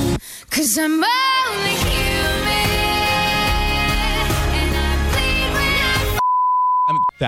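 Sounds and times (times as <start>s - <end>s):
busy pop song playing loudly: 0.1s - 6.2s
speech: 0.8s - 1.3s
short steady high-pitched censor bleep: 6.2s - 7.2s.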